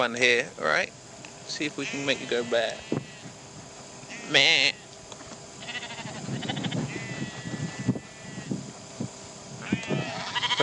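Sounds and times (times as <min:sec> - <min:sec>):
speech: 0:00.0 - 0:03.0, 0:04.3 - 0:04.8
breezy outdoor wind hiss: 0:00.0 - 0:10.6
sheep bleating: 0:01.8 - 0:03.3, 0:04.1 - 0:04.9, 0:05.6 - 0:08.5, 0:09.6 - 0:10.6.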